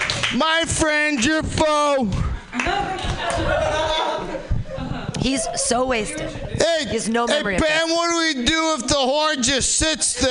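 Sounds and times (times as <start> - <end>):
crowd clapping: 0.0 - 4.0
speech: 0.3 - 4.5, 5.2 - 10.2
murmur of voices: 1.6 - 10.2
people chuckling: 2.5 - 6.6.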